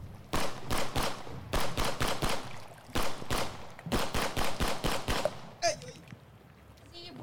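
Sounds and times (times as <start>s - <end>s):
rapid rifle gunshots in bursts: 0.3s - 5.6s.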